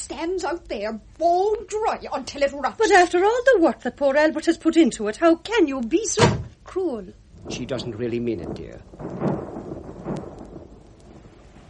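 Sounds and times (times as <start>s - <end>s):
steady rainfall: 0.0s - 11.6s
speech: 0.1s - 9.3s
low rumbling thunder: 6.2s - 11.6s.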